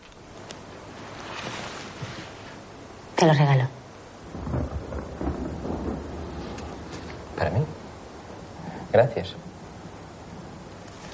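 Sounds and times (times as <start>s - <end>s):
heavy rain pouring outside an open window: 0.0s - 11.1s
speech: 3.2s - 3.8s, 9.0s - 9.5s
low rumbling thunder: 4.2s - 11.1s.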